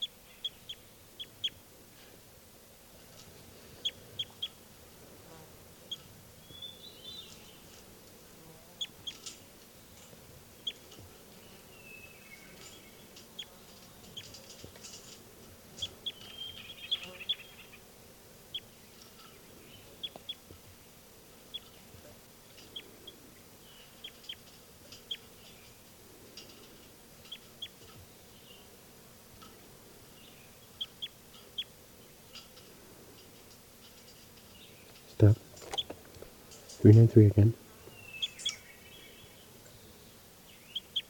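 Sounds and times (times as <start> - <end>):
steady low hum of outdoor noise: 0.0 - 41.0
two birds calling back and forth in chirpy bursts: 5.9 - 7.8, 8.8 - 15.2, 15.8 - 17.9, 18.5 - 28.8, 29.5 - 41.0
speech: 35.2 - 35.4, 36.8 - 37.6.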